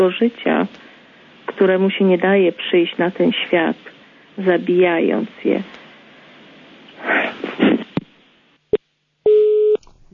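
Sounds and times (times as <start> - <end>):
speech: 0.0 - 0.8, 1.6 - 5.8
brief telephone beep: 9.3 - 9.8
telephone busy tone over the line: 9.3 - 9.8.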